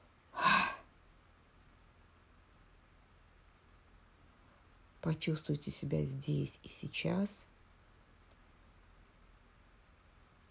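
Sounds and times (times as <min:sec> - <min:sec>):
person exhaling during a guided breathing exercise: 0:00.4 - 0:00.9
speech: 0:05.0 - 0:07.5.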